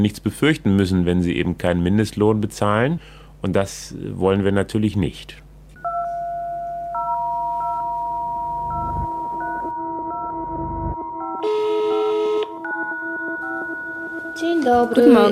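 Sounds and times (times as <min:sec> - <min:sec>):
speech: 0:00.0 - 0:05.4, 0:14.7 - 0:15.2
telephone dial tone: 0:05.8 - 0:10.4, 0:11.4 - 0:12.8
stepped telephone dialing beeps: 0:05.8 - 0:14.5
bright buzzy telephone tone: 0:05.8 - 0:15.2.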